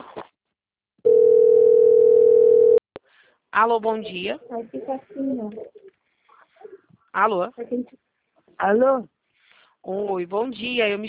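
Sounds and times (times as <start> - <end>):
telephone dial tone before a call: 1.1 - 2.8
speech: 3.6 - 5.8, 7.2 - 8.0, 8.6 - 9.2, 9.8 - 11.0.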